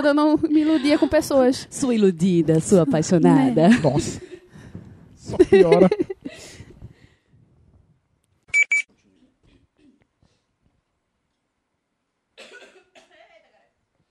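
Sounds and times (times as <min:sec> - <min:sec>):
speech: 0:00.0 - 0:04.3, 0:05.3 - 0:06.1
laughter: 0:00.5 - 0:01.5, 0:02.6 - 0:04.5, 0:05.2 - 0:06.3
loud coughs: 0:12.4 - 0:13.7.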